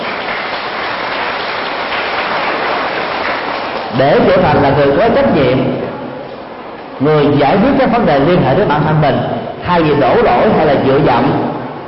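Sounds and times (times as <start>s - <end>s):
group of children applauding: 0.0s - 4.0s
speech: 4.0s - 6.0s, 7.0s - 11.5s.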